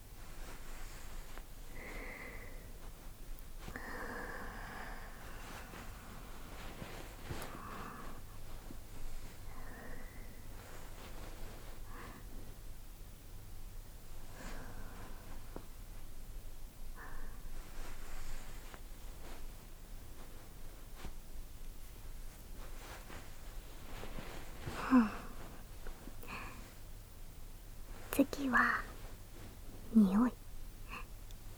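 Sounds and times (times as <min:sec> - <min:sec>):
faint futon fabric rustling: 0:00.0 - 0:30.6
woman breathing softly at the microphone under a futon: 0:00.4 - 0:12.6, 0:14.1 - 0:15.7, 0:16.9 - 0:19.5, 0:22.8 - 0:26.9, 0:30.8 - 0:31.2
speech: 0:24.9 - 0:25.2, 0:28.3 - 0:28.9, 0:30.0 - 0:30.4.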